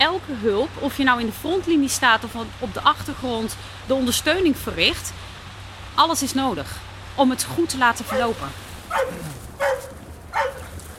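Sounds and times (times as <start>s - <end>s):
speech: 0.0s - 5.3s, 6.0s - 9.8s
quiet rumble: 0.0s - 10.9s
dog barking: 8.1s - 10.8s.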